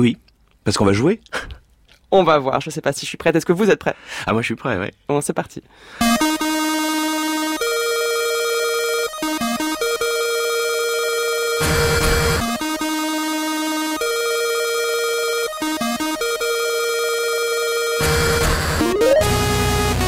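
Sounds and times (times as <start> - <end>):
speech: 0.0 - 6.4
telephone ringing with electronic melodic tone: 6.0 - 19.4.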